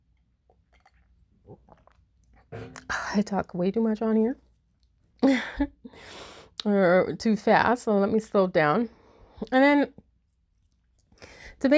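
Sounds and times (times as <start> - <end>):
person sipping water: 0.5 - 2.9
speech: 2.7 - 4.5, 5.3 - 10.0, 11.6 - 11.7.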